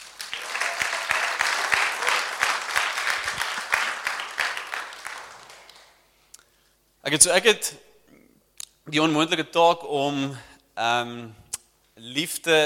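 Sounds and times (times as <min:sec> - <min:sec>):
crowd applauding: 0:00.0 - 0:06.0
speech: 0:07.1 - 0:07.9, 0:08.9 - 0:11.4, 0:12.0 - 0:12.6.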